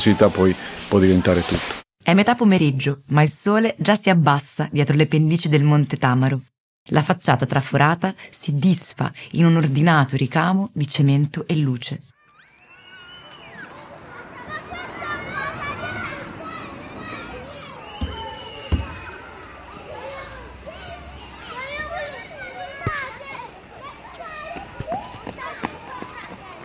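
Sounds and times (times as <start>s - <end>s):
speech: 0.0s - 12.1s
many children chattering and shouting in a small outdoor square: 12.2s - 26.6s.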